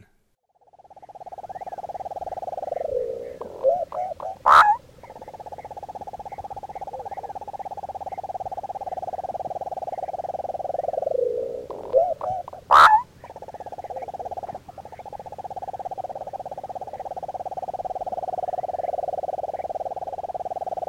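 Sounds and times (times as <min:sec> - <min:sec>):
Sand-colored Nightjar calling in the South American Eastern Lowlands: 0:00.7 - 0:20.8.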